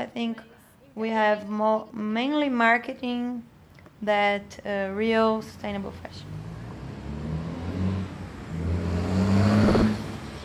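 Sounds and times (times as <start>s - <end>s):
speech: 0.0s - 6.4s
cars passing by on a street in front of a store: 6.1s - 10.4s
louder vehicle revving up: 6.2s - 10.4s.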